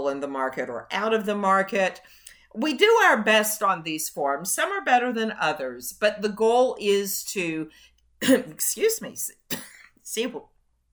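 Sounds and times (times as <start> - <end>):
speech: 0.0 - 10.5
person coughing: 9.5 - 9.9.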